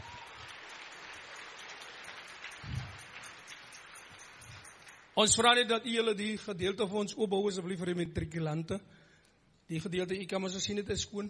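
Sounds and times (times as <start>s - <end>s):
crowd clapping: 0.0s - 5.2s
speech: 5.2s - 9.0s, 9.7s - 11.2s.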